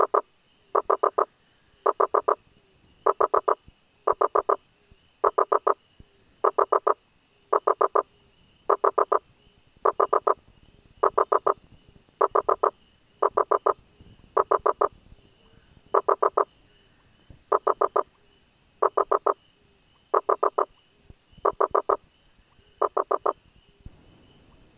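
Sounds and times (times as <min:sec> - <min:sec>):
Rosenberg's gladiator frog Boana rosenbergi knocking call: 0:00.0 - 0:02.4, 0:03.0 - 0:04.6, 0:05.2 - 0:05.8, 0:06.4 - 0:08.1, 0:08.7 - 0:09.2, 0:09.8 - 0:10.4, 0:11.0 - 0:11.6, 0:12.2 - 0:14.9, 0:15.9 - 0:16.5, 0:17.5 - 0:18.1, 0:18.8 - 0:19.4, 0:20.1 - 0:20.8, 0:21.4 - 0:22.0, 0:22.8 - 0:23.4
faint high hiss: 0:00.0 - 0:24.7.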